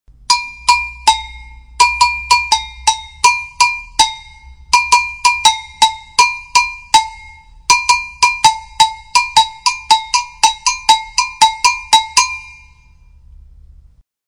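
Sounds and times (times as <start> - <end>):
agogo bell: 0.3 - 13.2.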